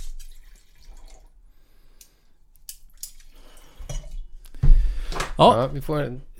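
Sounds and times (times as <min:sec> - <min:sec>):
wine pouring and dripping into glasses: 0:00.2 - 0:01.3
speech: 0:05.4 - 0:06.3.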